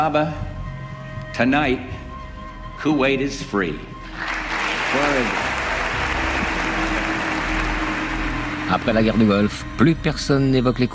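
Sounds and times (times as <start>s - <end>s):
speech: 0.0s - 0.5s, 1.4s - 2.0s, 2.8s - 4.3s, 4.9s - 5.5s, 8.7s - 10.9s
large crowd applauding: 4.1s - 9.6s.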